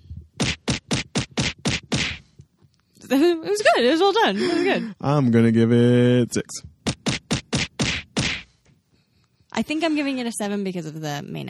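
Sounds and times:
kick and punch impact effects: 0:00.4 - 0:02.4, 0:06.8 - 0:08.6
speech: 0:03.1 - 0:06.8, 0:09.6 - 0:11.4.

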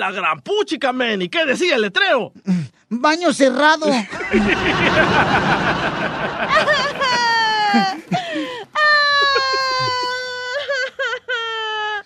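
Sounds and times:
speech: 0:00.0 - 0:07.0
giggly vocal noise: 0:04.0 - 0:11.8
woman crying in wailing sobs: 0:06.4 - 0:12.0.

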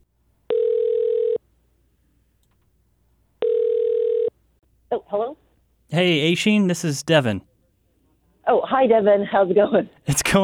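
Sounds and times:
telephone ringback tone: 0:00.5 - 0:01.4, 0:03.4 - 0:04.3
speech: 0:05.1 - 0:07.5, 0:08.7 - 0:10.4.

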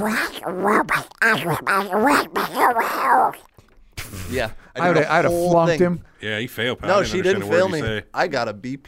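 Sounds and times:
garbled quacking cartoon duck voice impression: 0:00.0 - 0:03.5
speech: 0:00.0 - 0:03.5, 0:04.3 - 0:08.8.

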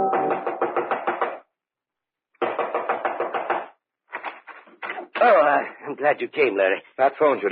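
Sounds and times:
rapid knocking on a house's front door: 0:00.0 - 0:01.4, 0:02.4 - 0:03.8
speech: 0:05.2 - 0:07.4.

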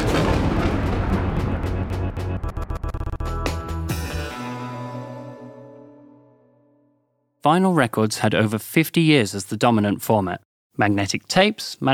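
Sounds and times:
thunder rumbling: 0:00.0 - 0:03.2
speech: 0:07.4 - 0:11.9.

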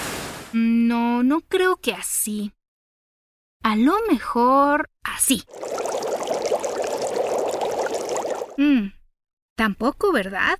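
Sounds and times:
speech: 0:00.5 - 0:02.6, 0:03.6 - 0:05.9, 0:08.6 - 0:09.0, 0:09.6 - 0:10.5
water pouring into water imitating raindrops: 0:05.4 - 0:08.6.

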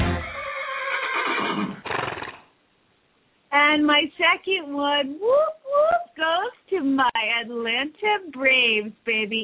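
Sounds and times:
horse neighing: 0:00.2 - 0:02.5
horse snorting: 0:00.9 - 0:02.5
speech: 0:03.8 - 0:09.4.

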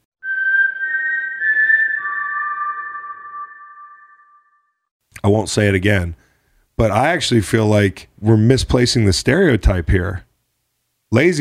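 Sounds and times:
short whistled tune: 0:00.2 - 0:04.8
speech: 0:05.2 - 0:06.2, 0:06.8 - 0:10.3, 0:11.1 - 0:11.3.

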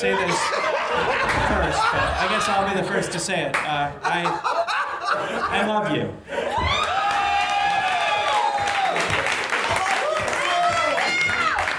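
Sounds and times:
speech: 0:00.0 - 0:06.7
laughter: 0:00.0 - 0:06.9
scattered cheers and high whoops: 0:06.5 - 0:11.7
live audience applauding: 0:06.7 - 0:11.7.

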